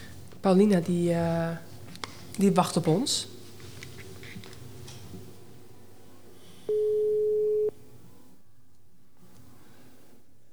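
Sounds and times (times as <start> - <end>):
speech: 0.4 - 1.7, 2.4 - 3.3
telephone ringing tone while placing an outgoing call: 6.7 - 7.8.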